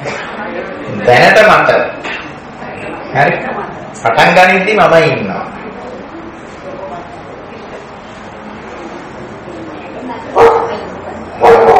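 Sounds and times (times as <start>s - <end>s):
speech: 1.0s - 2.0s, 3.1s - 5.6s
dog barking outside: 10.3s - 10.8s, 11.4s - 11.7s.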